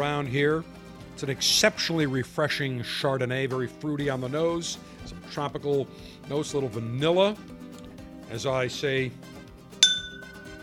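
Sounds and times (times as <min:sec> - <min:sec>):
speech: 0:00.0 - 0:07.6, 0:08.3 - 0:09.3
glasses of Chardonnay clinking in a toast: 0:09.8 - 0:10.6.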